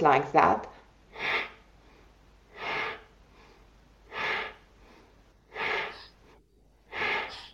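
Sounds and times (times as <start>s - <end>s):
forceful rushing breaths of fire breathing: 1.1s - 7.5s.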